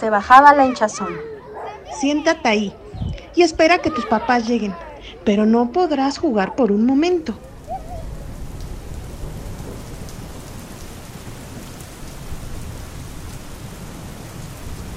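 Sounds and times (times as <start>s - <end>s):
speech: 0.0s - 1.3s, 1.9s - 2.8s, 3.4s - 7.5s
steady rain pouring down: 1.8s - 14.9s.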